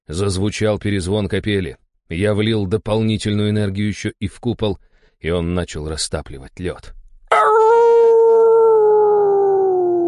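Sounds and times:
speech: 0.1 - 7.0
pack leader wolf howling: 7.3 - 10.0.

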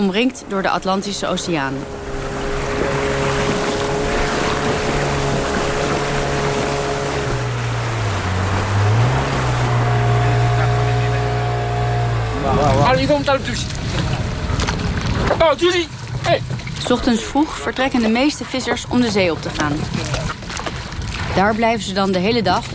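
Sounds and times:
speech: 0.0 - 2.1, 12.9 - 13.8, 15.4 - 20.3, 21.4 - 22.7
engines of small wooden fishing boats droning on a beach in Dakar: 0.0 - 22.7.

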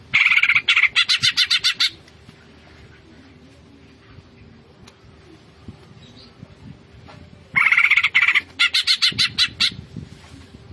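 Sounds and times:
greater green leafbird singing vigorously: 0.0 - 2.0, 7.5 - 9.8
low background noise: 0.0 - 10.7.

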